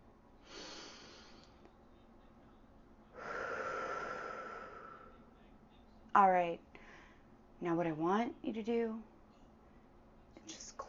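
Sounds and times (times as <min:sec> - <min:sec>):
deep breath: 0:00.4 - 0:01.5, 0:03.2 - 0:05.2, 0:06.7 - 0:07.3
speech: 0:06.2 - 0:06.7, 0:07.6 - 0:09.1.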